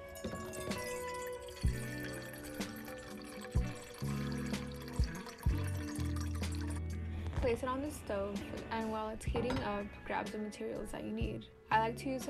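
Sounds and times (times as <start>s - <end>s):
vessel clunking as it fills: 0.0s - 6.7s, 9.2s - 9.9s
tap water filling a small pot for iced coffee: 0.0s - 6.9s
speech: 7.4s - 12.2s.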